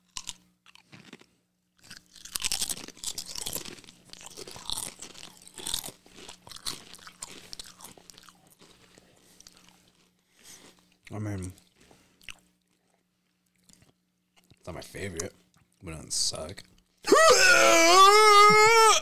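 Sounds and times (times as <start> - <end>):
tortilla chip being bitten and chewed at the microphone: 0.0 - 14.6
speech: 11.1 - 11.6, 14.7 - 16.7, 17.6 - 18.8.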